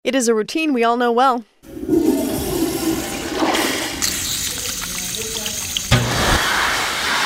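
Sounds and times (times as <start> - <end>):
speech: 0.0 - 1.9
toilet flushing: 1.6 - 7.2.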